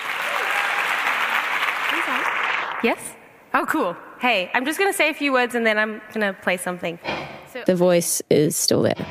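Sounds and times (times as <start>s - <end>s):
large crowd applauding a performer at a writers' festival: 0.0s - 3.1s
speech: 2.1s - 9.0s.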